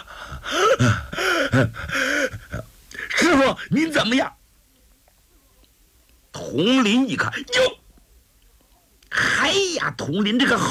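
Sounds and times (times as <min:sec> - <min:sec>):
human voice imitating heavy open-mouthed panting in a dramatic story scene: 0:00.0 - 0:03.2
speech: 0:00.8 - 0:02.0, 0:03.4 - 0:04.4, 0:06.5 - 0:07.7, 0:09.5 - 0:10.6.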